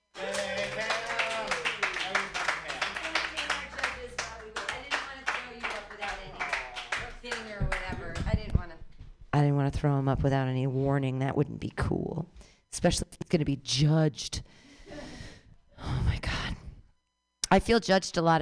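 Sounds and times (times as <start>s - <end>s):
audience clapping at a live comedy show: 0.1s - 8.3s
audience voices calling out and cheering: 0.2s - 7.1s
speech: 9.4s - 14.6s, 17.6s - 18.4s.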